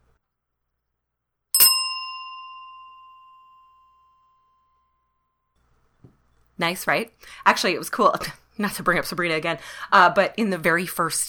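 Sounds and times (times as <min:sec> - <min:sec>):
ritual bell being rung: 0:01.6 - 0:03.8
speech: 0:06.6 - 0:11.2.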